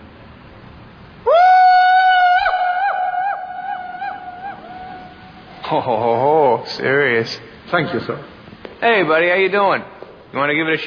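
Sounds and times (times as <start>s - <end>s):
single loud high-pitched yell with echo: 1.2s - 6.2s
speech: 5.7s - 10.8s.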